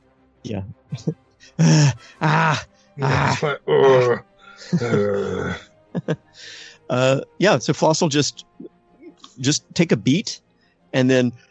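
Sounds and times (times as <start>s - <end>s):
speech: 0.4s - 8.5s, 9.4s - 11.4s
voice imitating heavy panting: 1.0s - 5.6s, 6.4s - 6.8s
laughter: 1.0s - 8.4s, 9.4s - 10.1s
quick short gasps: 6.4s - 6.8s.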